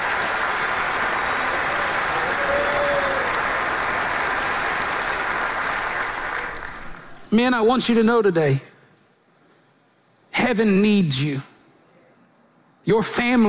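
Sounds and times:
church audience applauding: 0:00.0 - 0:07.3
speech: 0:07.3 - 0:08.7, 0:10.5 - 0:11.5, 0:12.8 - 0:13.4.

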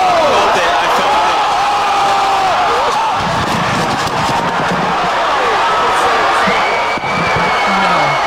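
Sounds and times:
big crowd cheering at a boxing match: 0:00.0 - 0:08.2.

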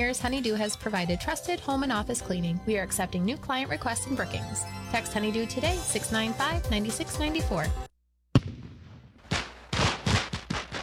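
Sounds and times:
speech: 0:00.0 - 0:07.9
fireworks exploding: 0:08.4 - 0:10.8.

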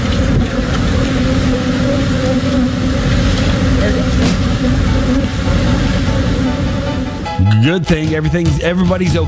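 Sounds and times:
huge swarm of escaped bees buzzing: 0:00.0 - 0:07.4
rough outdoor noise: 0:00.0 - 0:07.4
speech: 0:07.7 - 0:09.2.

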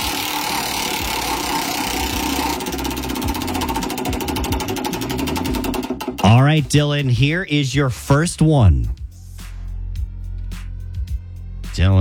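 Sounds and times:
prize wheel spinning with rapid steady ticking: 0:00.0 - 0:08.2
speech: 0:06.2 - 0:09.0.

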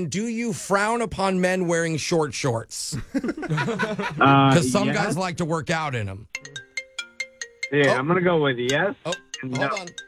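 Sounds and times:
speech: 0:00.0 - 0:06.4, 0:07.7 - 0:10.0
laughter: 0:02.9 - 0:05.3
cell phone ringing with chiming notes and warbling melody: 0:06.4 - 0:10.0.

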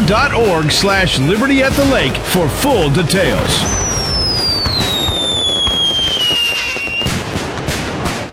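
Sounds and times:
speech: 0:00.1 - 0:04.0
fireworks crackling and popping: 0:01.0 - 0:08.3
high whistling tone gliding downward: 0:02.8 - 0:07.1.

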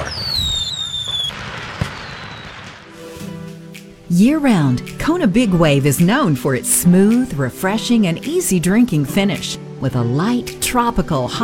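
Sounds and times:
low rumbling crackle of further firework bursts: 0:00.0 - 0:03.0
high whistling firework rocket trailing downward: 0:00.0 - 0:03.1
single sharp firework bang: 0:00.0 - 0:03.1
speech: 0:04.1 - 0:11.4.

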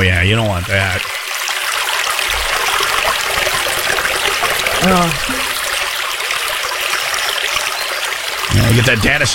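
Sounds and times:
speech: 0:00.0 - 0:01.2, 0:04.8 - 0:05.4, 0:08.7 - 0:09.3
babbling brook: 0:00.0 - 0:09.3.

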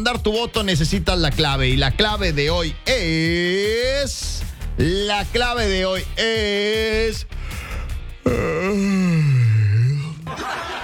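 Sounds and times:
speech: 0:00.0 - 0:07.4, 0:08.3 - 0:09.3
person yawning: 0:07.4 - 0:10.3
laughter: 0:09.9 - 0:10.8.

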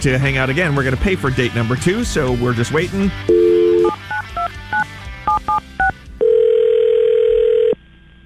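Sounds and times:
speech: 0:00.0 - 0:03.6
touch-tone beeps dialling a number: 0:03.3 - 0:07.8.

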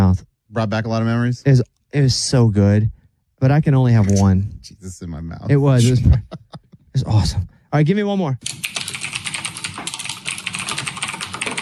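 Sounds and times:
speech: 0:00.2 - 0:08.7
laughter: 0:05.5 - 0:07.0
typing on a mechanical keyboard: 0:08.4 - 0:11.6.

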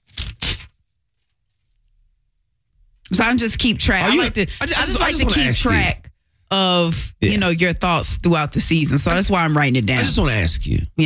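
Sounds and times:
sheets of paper slapped down and shuffled: 0:00.0 - 0:00.8
speech: 0:03.1 - 0:11.0.

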